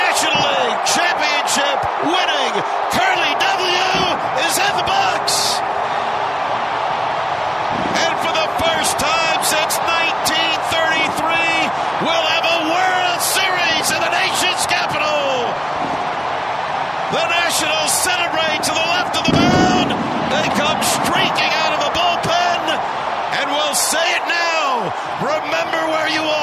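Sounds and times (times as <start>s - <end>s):
huge stadium crowd roaring, cheering and whistling: 0.0s - 26.4s
fireworks booming and crackling over a stadium crowd: 18.6s - 22.2s
especially heavy firework blast: 19.2s - 21.4s.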